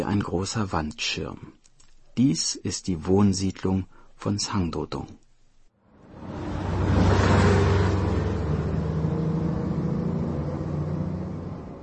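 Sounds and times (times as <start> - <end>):
speech: 0.0 - 1.6, 2.2 - 5.2
crowded bus engine droning while driving: 6.0 - 11.8.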